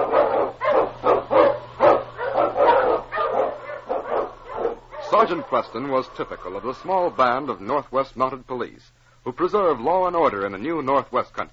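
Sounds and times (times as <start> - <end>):
sled dogs barking and yapping: 0.0 - 7.2
speech: 5.2 - 11.5.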